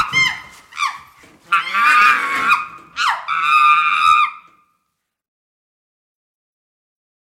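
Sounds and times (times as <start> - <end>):
chimpanzee screaming: 0.0 - 4.7.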